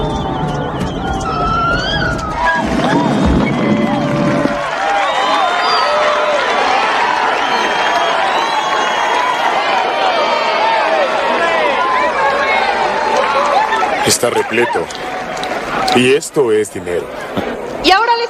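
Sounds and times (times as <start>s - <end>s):
low rumble: 0.0s - 4.9s
large audience at a marine park cheering and clapping for a whale show: 0.0s - 16.5s
speech: 14.1s - 15.0s, 15.9s - 18.2s.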